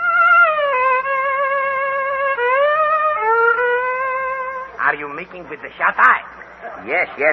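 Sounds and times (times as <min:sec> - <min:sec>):
bowed string instrument with catgut strings played to lull a man to sleep: 0:00.0 - 0:04.8
speech: 0:05.1 - 0:07.3.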